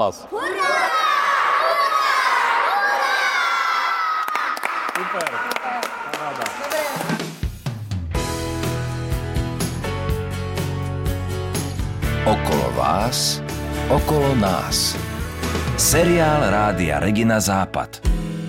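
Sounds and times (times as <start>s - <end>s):
speech: 0.0s - 0.8s, 5.0s - 7.3s, 12.2s - 15.1s, 15.8s - 18.0s
group of children shouting a joyful cheer: 0.3s - 7.1s
music track: 8.2s - 18.4s.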